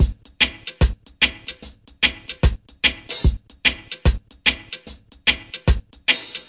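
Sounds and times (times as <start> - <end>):
reggae kick drum: 0.0 - 1.4, 2.0 - 4.6, 5.3 - 5.9
reggae hi-hat: 0.0 - 6.4.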